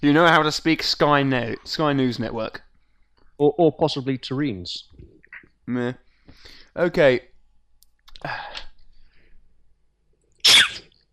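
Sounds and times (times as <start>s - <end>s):
speech: 0.0s - 2.6s, 3.4s - 5.0s, 5.7s - 7.3s, 8.2s - 8.7s
sneeze with a breathy inhaled buildup: 10.4s - 11.0s.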